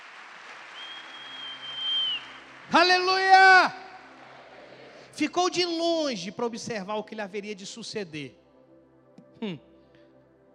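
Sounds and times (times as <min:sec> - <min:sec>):
crowd clapping: 0:00.0 - 0:05.1
faint high whistle-like tone: 0:00.8 - 0:02.4
speech: 0:02.7 - 0:03.8, 0:05.2 - 0:08.4, 0:09.4 - 0:09.7.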